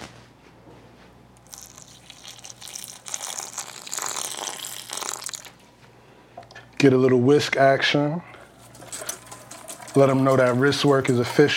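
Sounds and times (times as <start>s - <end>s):
water pouring into a bowl of dry waffle mix: 1.5s - 5.5s, 8.5s - 11.5s
speech: 6.8s - 8.3s, 10.0s - 11.5s.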